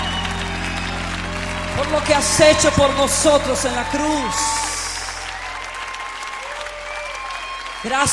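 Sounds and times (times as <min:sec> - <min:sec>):
faint sustained tones: 0:00.0 - 0:05.5
congregation applauding: 0:00.0 - 0:08.1
speech: 0:01.9 - 0:04.6, 0:07.8 - 0:08.1.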